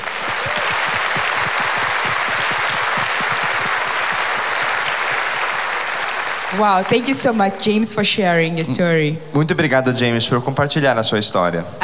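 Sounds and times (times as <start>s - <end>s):
sustained applause from a sizable audience: 0.0s - 7.7s
speech: 6.6s - 11.8s.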